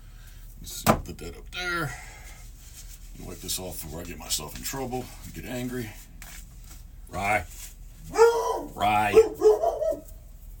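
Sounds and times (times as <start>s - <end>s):
speech: 0.6s - 2.1s, 3.4s - 6.1s, 7.1s - 7.6s, 8.8s - 9.4s
dog bark: 8.1s - 10.1s.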